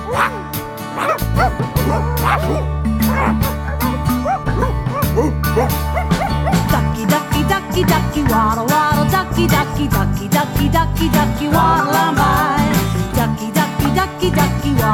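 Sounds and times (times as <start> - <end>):
person imitating yappy dog barks: 0.0 - 0.4, 1.0 - 6.8
musical backing: 0.0 - 14.9
speech: 9.4 - 12.6.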